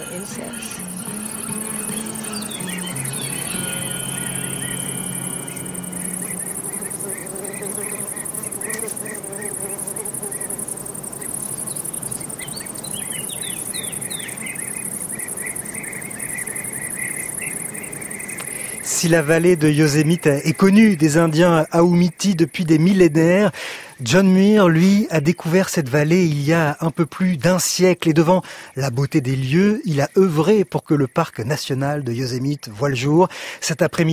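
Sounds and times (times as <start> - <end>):
wind rushing through willow branches in Yosemite Valley: 0.0 - 21.7
insects chirring in Yosemite Valley: 0.0 - 34.1
speech: 0.1 - 1.2, 19.0 - 34.1.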